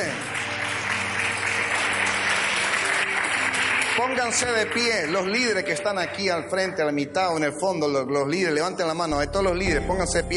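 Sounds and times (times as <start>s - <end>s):
crowd applauding: 0.0s - 7.0s
speech: 4.0s - 10.3s.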